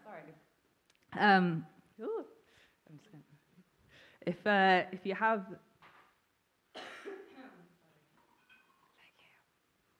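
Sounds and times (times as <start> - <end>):
speech: 0.2 - 2.2, 2.9 - 3.3, 4.2 - 5.7
soft whispery breaths: 3.8 - 4.3, 8.8 - 9.8
breathy cough: 6.7 - 7.6.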